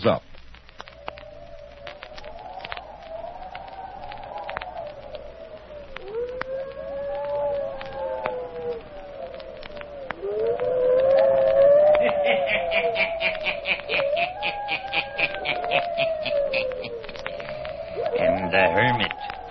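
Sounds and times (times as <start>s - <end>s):
speech: 0.0s - 0.3s
hounds howling: 0.8s - 19.4s
laughter: 12.0s - 17.2s.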